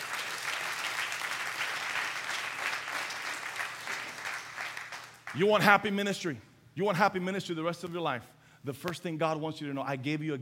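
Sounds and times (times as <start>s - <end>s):
audience applause giving praise to the Lord: 0.0s - 5.3s
speech: 5.4s - 10.4s.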